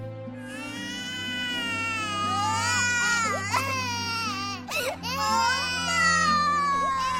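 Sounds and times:
baby crying loudly: 0.4s - 7.1s.

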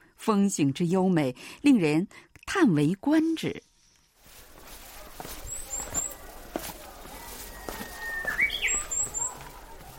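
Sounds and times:
speech: 0.2s - 3.7s
outdoor rustling on a mountainside: 3.4s - 9.9s
birds chirping: 3.5s - 9.9s
footsteps on a mountainside covered with red flowers and green grass: 4.2s - 9.9s
rising whistled call: 7.5s - 9.4s.

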